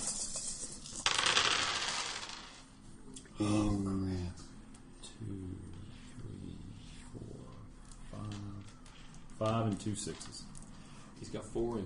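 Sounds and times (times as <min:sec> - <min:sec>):
handful of dice tumbling and clattering across a hard surface: 0:00.0 - 0:02.6
speech: 0:03.4 - 0:04.4, 0:09.4 - 0:10.4, 0:11.2 - 0:11.8.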